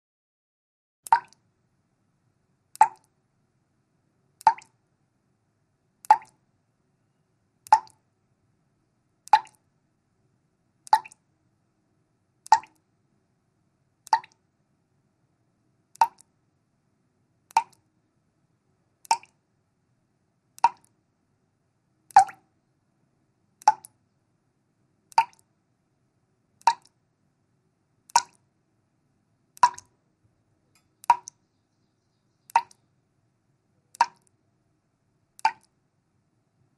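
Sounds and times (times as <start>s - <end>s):
water dripping slowly: 1.0s - 1.5s, 2.7s - 3.2s, 4.4s - 4.8s, 6.0s - 6.5s, 7.6s - 8.1s, 9.2s - 9.7s, 10.8s - 11.3s, 12.4s - 12.9s, 14.0s - 14.6s, 15.9s - 16.4s, 17.4s - 17.9s, 19.0s - 19.5s, 20.5s - 21.0s, 22.1s - 22.6s, 23.6s - 24.0s, 25.1s - 25.6s, 26.6s - 27.0s, 28.0s - 28.5s, 29.5s - 30.0s, 30.7s - 32.9s, 33.9s - 34.4s, 35.4s - 35.8s.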